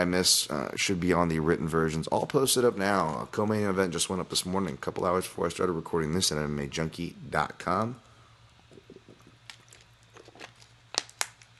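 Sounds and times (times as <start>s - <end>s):
speech: 0.0s - 8.1s
person sipping a drink: 8.7s - 10.8s.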